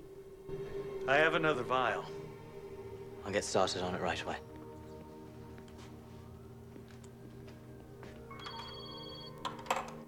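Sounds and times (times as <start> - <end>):
speech: 0.5 - 2.2, 3.2 - 4.5
mobile phone ringing with an electronic ringtone: 8.3 - 9.4.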